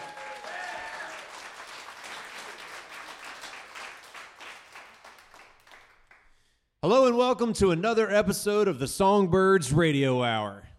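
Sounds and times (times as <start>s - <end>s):
audience whoops: 0.0s - 1.6s
live audience applause: 0.0s - 6.2s
speech: 6.8s - 10.6s.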